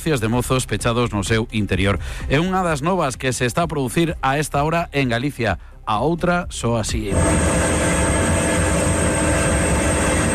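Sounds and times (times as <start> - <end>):
speech: 0.0 - 7.8
helicopters arriving at a forest fire: 7.1 - 10.3.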